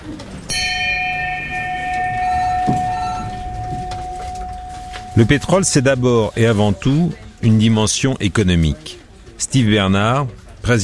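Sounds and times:
bell rung to mark a closed deal in an oil-trading setting: 0:00.4 - 0:07.9
speech: 0:05.2 - 0:10.8.

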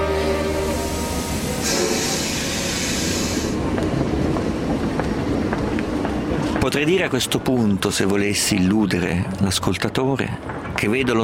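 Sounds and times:
hiss of rolling train wheels: 0:00.0 - 0:04.9
train rumbling as it departs from a station: 0:00.0 - 0:11.2
speech: 0:06.7 - 0:11.2.

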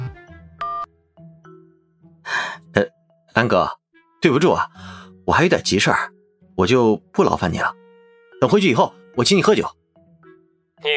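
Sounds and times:
mobile phone ringtone for an incoming call: 0:00.6 - 0:01.6
speech: 0:02.8 - 0:07.8, 0:08.4 - 0:09.8, 0:10.8 - 0:10.9.

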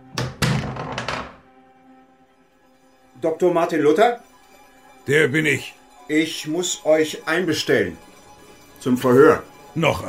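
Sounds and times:
heavy wooden door opening with latch and frame clunks: 0:00.2 - 0:01.4
speech: 0:03.2 - 0:04.3, 0:05.0 - 0:08.1, 0:08.8 - 0:10.0.

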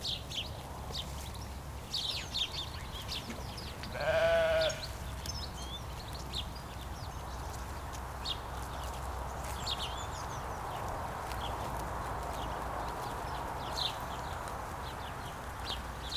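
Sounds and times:
steady low rumble of traffic from a distant road: 0:00.0 - 0:16.1
grazing sheep giving a single short bleat: 0:03.9 - 0:05.0.

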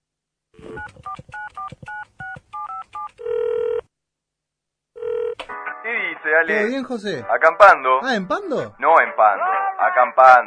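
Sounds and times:
telephone keypad tones from a number being dialed: 0:00.6 - 0:03.8
speech: 0:06.3 - 0:10.4.

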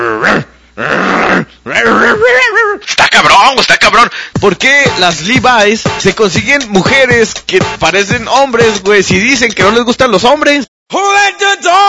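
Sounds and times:
human voice imitating a growling dog: 0:00.0 - 0:02.4
speech: 0:03.2 - 0:11.8.

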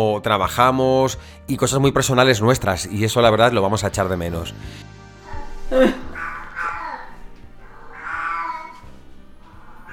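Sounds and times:
speech: 0:00.0 - 0:05.0, 0:05.7 - 0:06.0
unspayed female cat meowing at home: 0:05.2 - 0:09.9.

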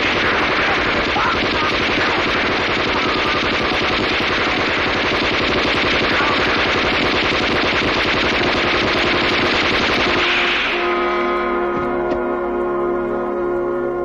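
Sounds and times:
machine-gun and rifle fire from a battle scene in a Chinese anti-Japanese resistance film: 0:00.0 - 0:11.1
sustained tonal drone: 0:00.0 - 0:14.0.

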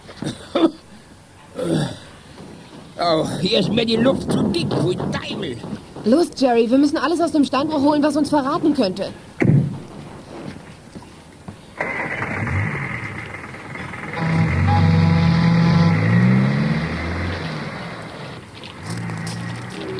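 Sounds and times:
speech: 0:03.0 - 0:09.2
car engine driving away along back roads: 0:11.8 - 0:19.9.

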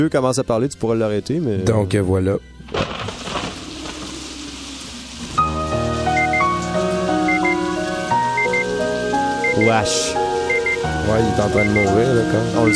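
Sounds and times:
speech: 0:00.0 - 0:03.0, 0:09.6 - 0:10.2, 0:11.1 - 0:12.7
tonal music with sustained notes: 0:02.5 - 0:12.7
steady rain pattering on a surface: 0:02.6 - 0:12.7.

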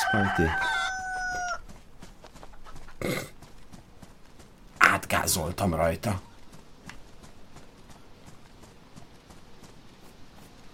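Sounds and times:
rooster crowing: 0:00.0 - 0:01.8
speech: 0:00.1 - 0:00.8, 0:05.2 - 0:06.3.

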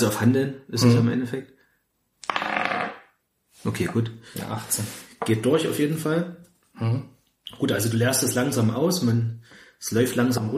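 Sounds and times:
speech: 0:00.0 - 0:01.6, 0:03.6 - 0:10.5
twenty-sided die tumbling across a hard surface: 0:02.2 - 0:03.1.

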